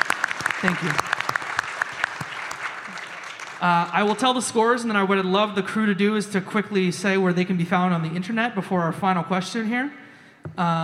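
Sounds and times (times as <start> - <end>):
audience applause: 0.0 - 4.5
speech: 0.6 - 1.1, 3.6 - 10.0, 10.6 - 10.8.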